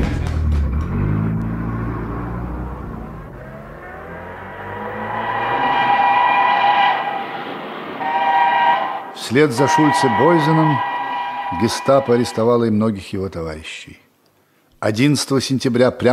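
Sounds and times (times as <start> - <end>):
car engine revving as the vehicle accelerates and pulls away: 0.3 - 12.4
speech: 9.3 - 10.9, 11.5 - 14.0, 14.8 - 16.1.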